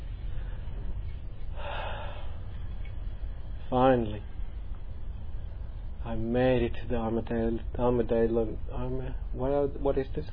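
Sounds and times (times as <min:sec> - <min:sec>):
low hum: 0:00.0 - 0:10.3
person breathing in deeply during a meditation class in Armadale: 0:01.5 - 0:02.5
speech: 0:03.7 - 0:04.3, 0:06.1 - 0:10.3.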